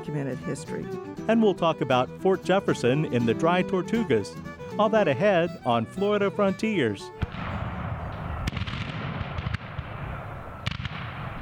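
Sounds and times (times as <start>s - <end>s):
speech: 0.0s - 7.2s
cannon fire in a North Florida pine forest: 7.2s - 11.4s.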